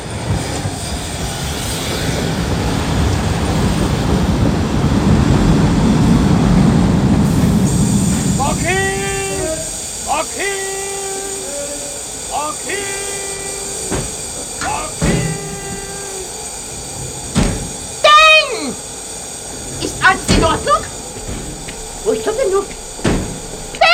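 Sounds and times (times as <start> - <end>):
train arriving with rumble of railcars and wheels: 0.0 - 23.9.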